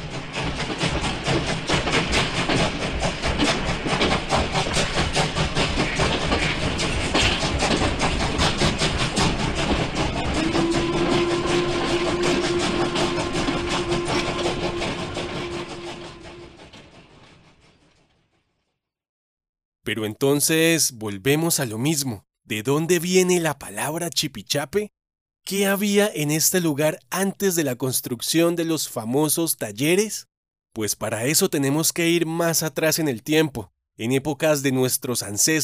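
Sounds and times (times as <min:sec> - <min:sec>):
old steam train chugging: 0:00.0 - 0:17.2
steam train wheels clattering on rails: 0:00.0 - 0:18.2
steam train low whistle tone: 0:10.4 - 0:16.6
speech: 0:20.1 - 0:35.6.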